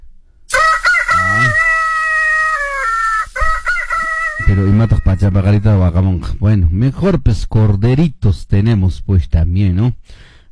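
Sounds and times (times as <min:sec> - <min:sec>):
rooster crowing: 0:00.5 - 0:05.6
speech: 0:04.6 - 0:10.3.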